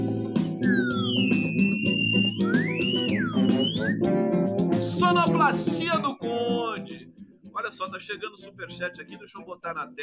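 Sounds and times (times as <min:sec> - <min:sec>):
loud steady musical backing: 0:00.0 - 0:10.0
whistle blowing bright sliding tones: 0:00.6 - 0:04.2
speech: 0:05.4 - 0:06.1, 0:07.7 - 0:10.0.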